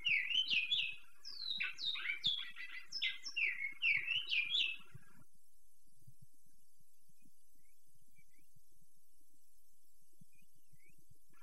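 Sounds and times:
kept large-billed seed finch clear-song of slurred whistles: 0.0 - 5.0, 10.3 - 11.4.

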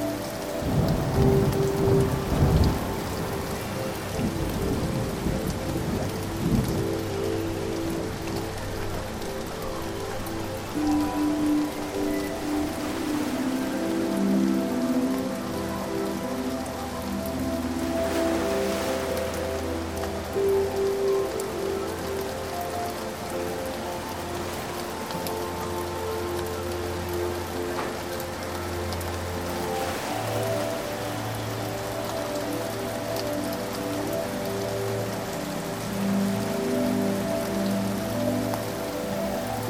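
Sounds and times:
steady heavy rain pouring down: 0.0 - 39.6
low rumbles of distant thunder: 0.6 - 15.4.

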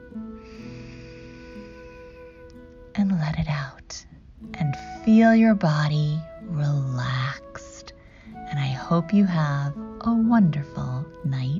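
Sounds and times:
sustained low tonal hum: 0.0 - 11.5
slow deep inhale: 0.4 - 2.5, 8.0 - 8.4
speech: 3.0 - 6.8, 8.9 - 11.5.

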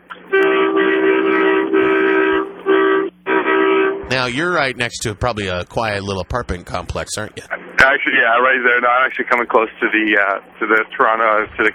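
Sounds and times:
vehicle horn honking: 0.3 - 4.2
speech: 4.2 - 11.7.

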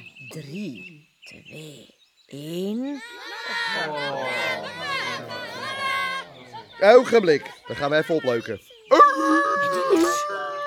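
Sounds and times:
speech: 0.3 - 5.5, 6.8 - 9.4
laughter: 3.2 - 10.6
wolf howl: 8.9 - 10.6.

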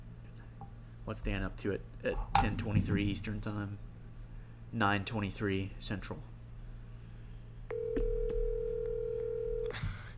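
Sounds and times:
low electrical hum: 0.0 - 10.1
speech: 1.1 - 3.9, 4.7 - 6.3
outgoing phone call ringback tone: 7.7 - 9.7.

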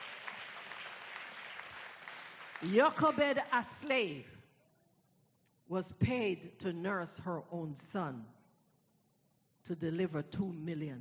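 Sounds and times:
congregation clapping hands in praise at a worship service: 0.0 - 3.7
speech: 2.6 - 4.4, 5.7 - 8.4, 9.6 - 10.9.

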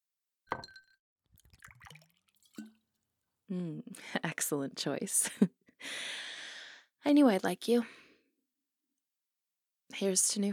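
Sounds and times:
glass clinking: 0.5 - 0.9
drink gurgling and splashing as poured into a glass: 1.4 - 2.9
speech: 3.5 - 6.2, 7.0 - 8.0, 10.0 - 10.5.

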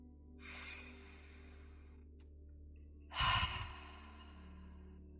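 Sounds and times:
deep breathing during a guided eyes-closed meditation: 0.4 - 2.0, 3.1 - 5.0.

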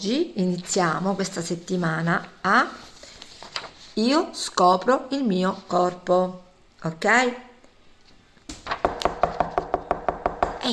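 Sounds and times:
speech: 0.0 - 2.9, 4.0 - 7.5
sharp knocks: 8.5 - 10.7.

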